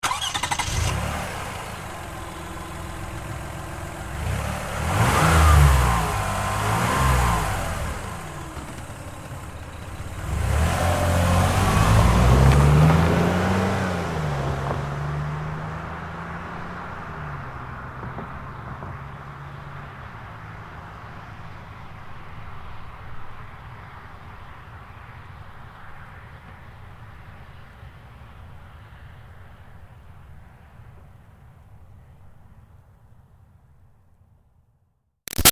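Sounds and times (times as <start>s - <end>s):
2005 Toyota Highlander V6 starting: 0.0s - 19.6s.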